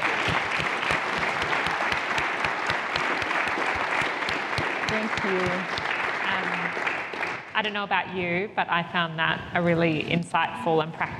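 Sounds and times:
room full of people applauding: 0.0 - 7.5
speech: 5.2 - 5.8, 7.6 - 11.1.

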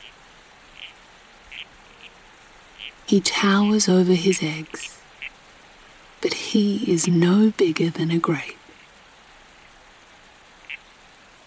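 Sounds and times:
steady soft hiss: 0.0 - 11.4
male red-crowned toadlet frog chirping in Dharawal country: 0.7 - 3.0, 4.6 - 5.4, 10.6 - 10.9
speech: 3.1 - 5.0, 6.2 - 8.5.

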